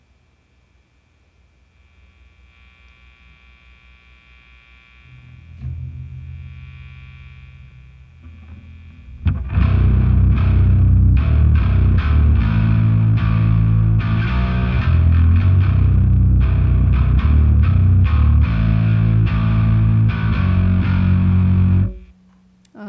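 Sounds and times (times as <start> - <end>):
low hum: 0.0 - 22.7
electric guitar through pedal with classic distortion tone playing chunky riffs: 4.5 - 22.2.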